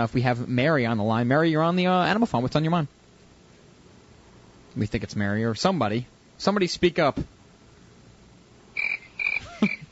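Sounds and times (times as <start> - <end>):
speech: 0.0 - 3.0, 4.8 - 7.4
crickets chirping: 8.7 - 9.9.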